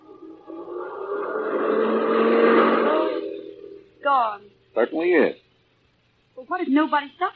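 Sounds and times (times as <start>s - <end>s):
car driving past: 0.0s - 4.0s
speech: 4.1s - 5.4s, 6.5s - 7.3s.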